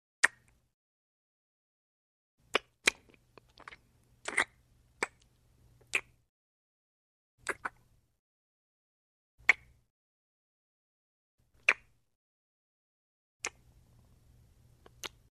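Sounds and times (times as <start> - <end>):
human soft light kisses: 2.5 - 6.2, 9.4 - 9.8, 14.8 - 15.2.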